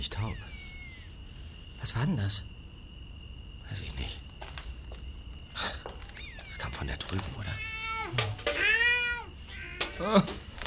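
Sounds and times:
speech: 0:00.0 - 0:00.5, 0:01.8 - 0:02.5, 0:03.7 - 0:04.3, 0:06.8 - 0:08.3, 0:10.0 - 0:10.5
cat meowing: 0:00.3 - 0:01.1, 0:06.2 - 0:06.7, 0:07.3 - 0:10.3.

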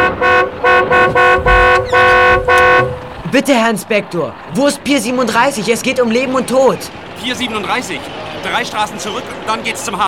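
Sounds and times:
car horn honking: 0:00.0 - 0:03.3
speech: 0:03.3 - 0:10.0.

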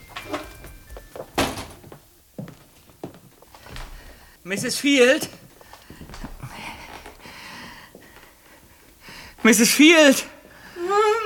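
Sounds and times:
door slowly pushed open with drawn-out creak: 0:00.0 - 0:02.0
speech: 0:04.4 - 0:05.4, 0:09.5 - 0:10.3.

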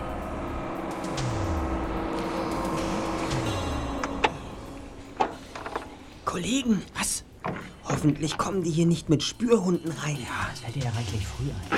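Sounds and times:
car engine rumbling as the vehicle slows to a halt: 0:00.0 - 0:06.3
speech: 0:06.3 - 0:11.7.

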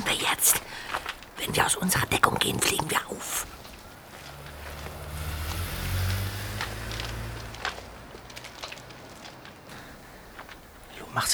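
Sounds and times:
speech: 0:01.4 - 0:03.5, 0:11.2 - 0:11.3
car engine drone as a car drives away: 0:03.0 - 0:10.8.

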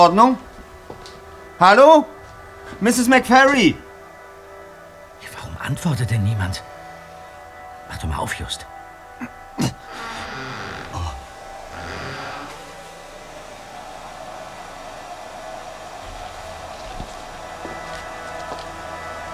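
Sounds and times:
speech: 0:00.0 - 0:00.4, 0:01.6 - 0:02.2, 0:02.8 - 0:03.8, 0:05.6 - 0:06.7, 0:07.9 - 0:09.8
hair dryer running: 0:11.3 - 0:19.3.

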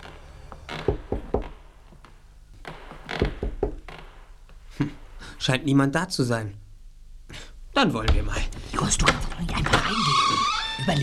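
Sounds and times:
soft hesitant knocking on a wooden door: 0:00.8 - 0:01.6, 0:03.1 - 0:03.9
speech: 0:04.8 - 0:06.6, 0:07.8 - 0:11.0.

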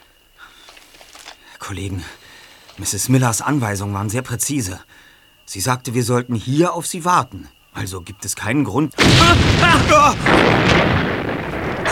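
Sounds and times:
speech: 0:01.6 - 0:11.0
loud explosion: 0:09.0 - 0:11.9.

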